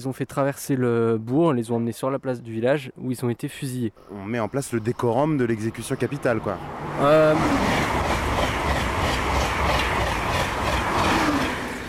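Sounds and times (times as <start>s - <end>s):
speech: 0.0s - 7.8s
TGV high-speed train rushing through a village at full speed: 5.7s - 11.8s.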